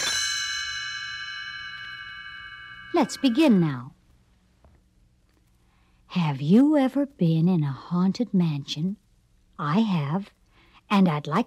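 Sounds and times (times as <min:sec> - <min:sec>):
small bells ringing as a page-turn signal: 0:00.0 - 0:03.9
speech: 0:02.9 - 0:04.0, 0:06.1 - 0:09.0, 0:09.6 - 0:11.4.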